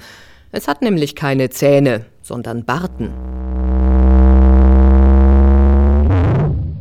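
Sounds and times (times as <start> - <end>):
speech: 0.5 - 3.5
blue whale drone: 2.8 - 6.7.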